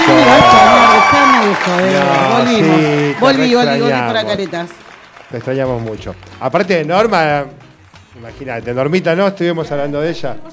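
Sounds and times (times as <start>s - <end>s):
voices calling out: 0.0s - 5.0s
crowd clapping and cheering to welcome a guest: 0.0s - 8.2s
speech: 1.6s - 10.5s.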